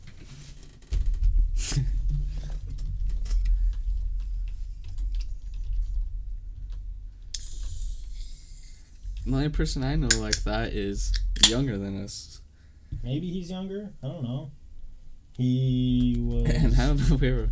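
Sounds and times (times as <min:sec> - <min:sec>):
low rumble: 0:00.9 - 0:17.5
typing on a computer keyboard: 0:02.7 - 0:06.8
speech: 0:09.3 - 0:12.4, 0:13.0 - 0:14.6, 0:15.4 - 0:17.5
laughter: 0:16.3 - 0:17.5.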